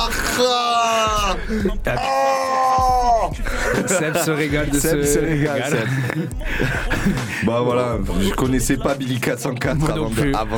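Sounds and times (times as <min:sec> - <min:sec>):
man screaming in a studio control room: 0:00.0 - 0:03.4
laughter: 0:00.0 - 0:07.7
speech: 0:00.4 - 0:02.4, 0:03.3 - 0:10.5.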